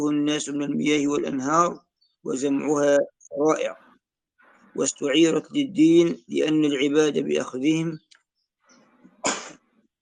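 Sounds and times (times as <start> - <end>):
speech: 0.0 - 3.8, 4.8 - 8.0
human sneeze: 9.2 - 9.6.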